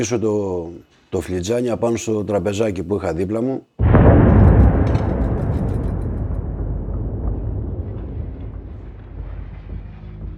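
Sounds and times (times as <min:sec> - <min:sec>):
speech: 0:00.0 - 0:03.8
loud explosion on a factory's main production line: 0:03.8 - 0:10.1
scattered crackling debris: 0:03.8 - 0:10.2.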